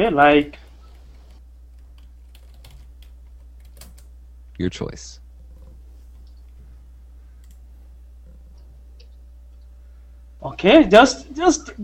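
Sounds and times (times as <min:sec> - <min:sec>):
speech: 0:00.0 - 0:00.6, 0:04.6 - 0:05.2, 0:10.4 - 0:11.8
steady low hum: 0:00.0 - 0:11.8
typing on a computer keyboard: 0:00.9 - 0:04.1.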